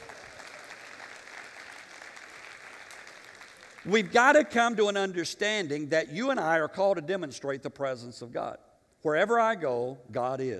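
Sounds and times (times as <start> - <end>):
crowd clapping: 0.0 - 4.2
speech: 3.8 - 10.5.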